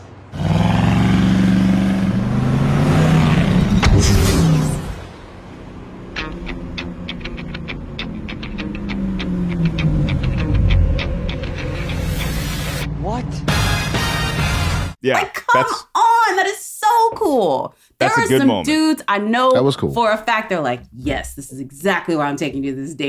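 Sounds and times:
Camaro car engine revving and pulling away: 0:00.1 - 0:15.0
speech: 0:15.1 - 0:15.9, 0:17.4 - 0:23.0.

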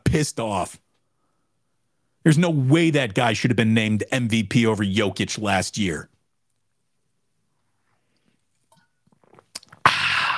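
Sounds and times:
speech: 0:00.1 - 0:00.8, 0:02.2 - 0:06.1
person sipping a drink: 0:07.6 - 0:10.3
loud breathy exhale: 0:09.8 - 0:10.3.

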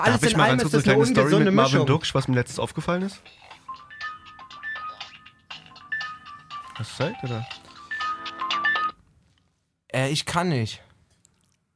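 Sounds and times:
speech: 0:00.0 - 0:03.5, 0:06.8 - 0:07.6, 0:10.0 - 0:10.8
work mobile phone ringtone in a trouser pocket: 0:03.2 - 0:09.0.

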